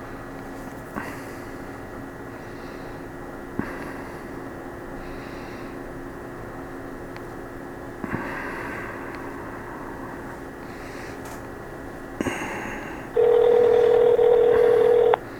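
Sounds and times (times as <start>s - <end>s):
telephone line ringing with a buzzy tone: 13.2s - 15.2s.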